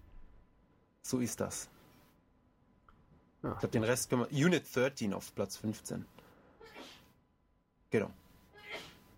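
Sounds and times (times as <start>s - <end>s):
speech: 1.1s - 1.8s, 3.4s - 6.2s, 7.9s - 8.2s
sneeze from a woman in the kitchen in another room: 6.7s - 7.1s, 8.6s - 9.1s.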